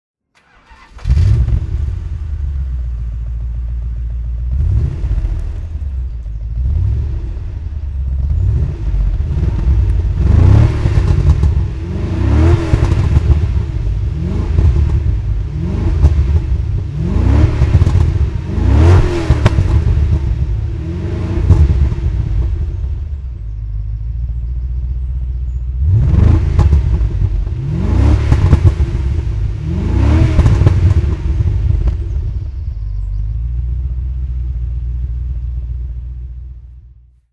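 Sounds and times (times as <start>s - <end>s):
Aston Martin V8 Volante engine throttle: 0.4s - 35.9s.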